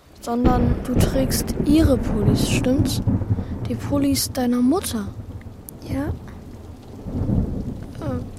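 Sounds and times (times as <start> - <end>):
deep roll of thunder rumbling: 0.0 - 8.3
steady rainfall: 0.0 - 8.3
speech: 0.2 - 5.2, 5.9 - 6.2.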